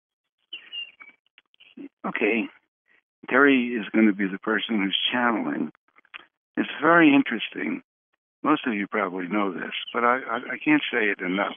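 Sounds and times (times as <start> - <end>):
bird chirping outside a window: 0.4 - 1.9, 9.6 - 11.5
speech: 2.0 - 2.6, 3.2 - 5.8, 6.6 - 11.5.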